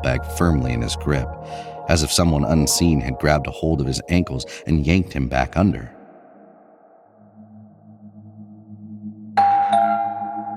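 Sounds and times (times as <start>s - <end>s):
speech: 0.0s - 6.0s
doorbell ding-dong: 9.4s - 10.5s.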